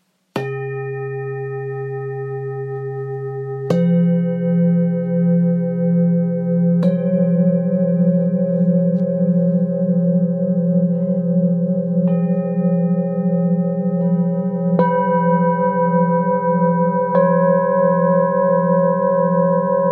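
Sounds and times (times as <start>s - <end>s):
thick singing bowls: 0.4s - 19.8s.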